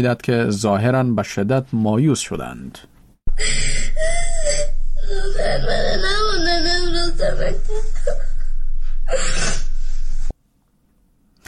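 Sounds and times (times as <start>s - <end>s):
speech: 0.0s - 4.1s, 5.5s - 8.0s
schoolgirl in Afghanistan sobbing and wailing in distress: 3.3s - 9.9s.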